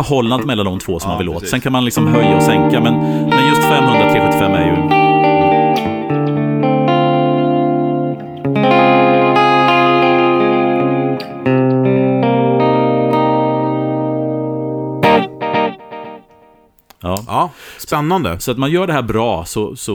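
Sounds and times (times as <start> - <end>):
speech: 0.0 - 5.0, 17.1 - 19.9
electric guitar staccato notes through rhythmic delay effect: 2.0 - 16.7.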